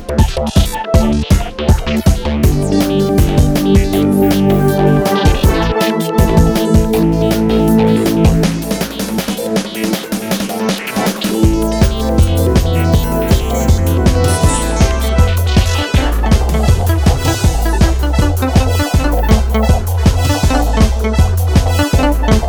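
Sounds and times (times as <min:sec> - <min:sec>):
rock montage music: 0:00.4 - 0:22.4.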